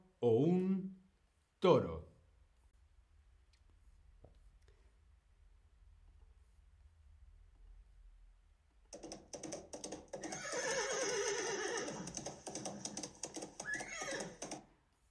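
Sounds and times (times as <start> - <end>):
speech: 0.2 - 0.9, 1.6 - 2.0
horse neighing: 10.2 - 14.5.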